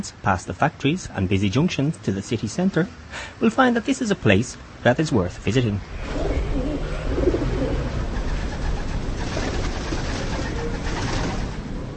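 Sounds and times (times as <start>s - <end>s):
speech: 0.0s - 6.3s
outdoor noise: 0.0s - 11.9s
pigeons cooing on cathedral buttresses in Kolín: 5.9s - 11.6s.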